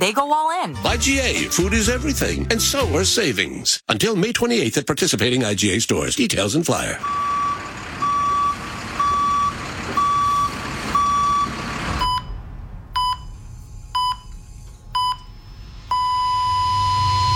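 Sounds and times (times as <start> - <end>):
speech: 0.0 - 7.4
vehicle reverse alarm beeping on a construction site: 7.0 - 12.4, 13.0 - 14.3, 14.9 - 17.3
rumbling vehicle engine on a construction site: 7.0 - 17.3.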